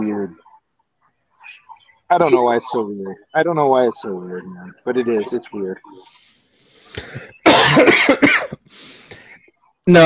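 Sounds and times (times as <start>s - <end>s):
speech: 0.0s - 0.5s, 1.5s - 6.3s, 7.0s - 8.8s, 9.9s - 10.0s
harsh coughing: 7.0s - 9.3s.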